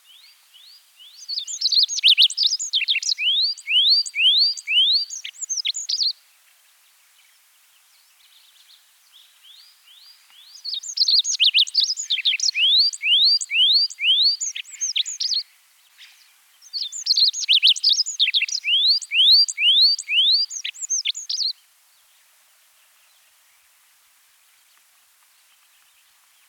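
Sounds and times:
spotted pipit voice: 0:01.2 - 0:06.1, 0:10.6 - 0:15.5, 0:16.6 - 0:21.6.

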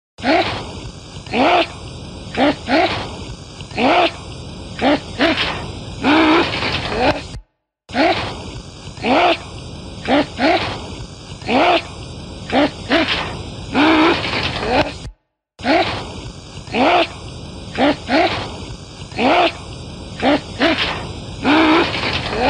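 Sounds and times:
voice: 0:00.2 - 0:00.6, 0:01.3 - 0:01.8, 0:02.4 - 0:03.1, 0:03.7 - 0:04.2, 0:04.8 - 0:08.3, 0:09.0 - 0:10.8, 0:11.4 - 0:11.9, 0:12.5 - 0:16.1, 0:16.7 - 0:18.5, 0:19.1 - 0:19.6, 0:20.2 - 0:22.4.

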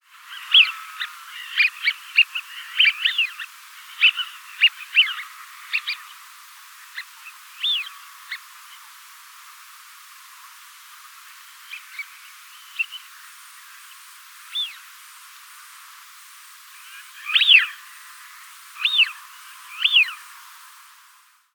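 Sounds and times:
Eurasian wigeon calling: 0:00.3 - 0:06.2, 0:06.8 - 0:08.9, 0:13.8 - 0:14.8, 0:16.8 - 0:18.0, 0:18.8 - 0:20.2.

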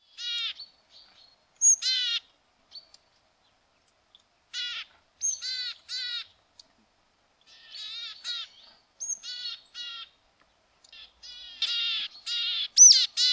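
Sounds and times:
willow tit calling: 0:00.0 - 0:03.0, 0:04.5 - 0:06.4, 0:07.4 - 0:10.2, 0:10.8 - 0:13.3.

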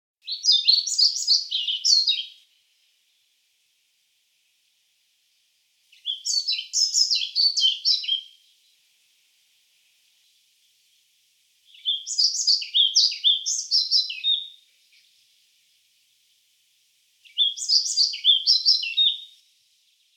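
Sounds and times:
pied flycatcher voice: 0:00.2 - 0:02.5, 0:05.9 - 0:08.8, 0:11.7 - 0:15.3, 0:17.2 - 0:20.1.

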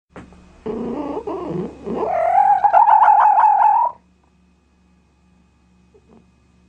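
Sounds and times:
fox voice: 0:00.6 - 0:04.0.

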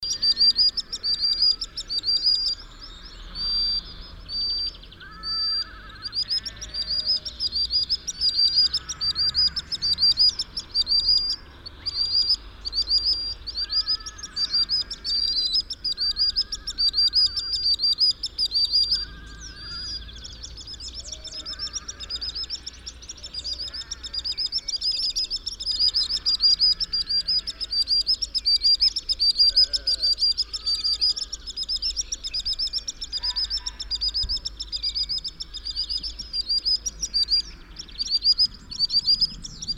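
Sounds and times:
common sandpiper calling: 0:00.0 - 0:39.7.

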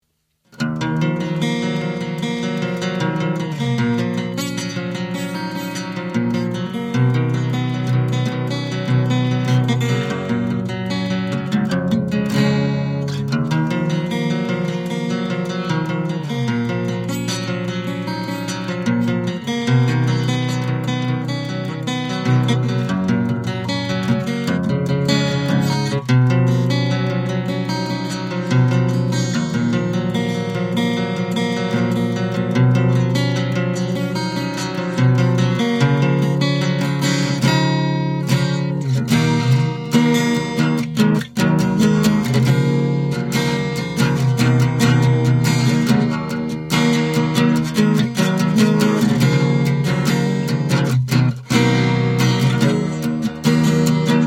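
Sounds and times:
guitar: 0:00.0 - 0:54.2.

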